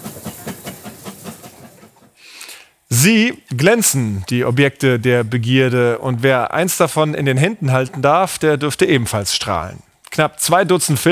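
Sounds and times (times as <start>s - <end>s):
steam locomotive hissing on the Brocken railway in the Harz mountains: 0.0s - 2.8s
speech: 2.9s - 11.1s.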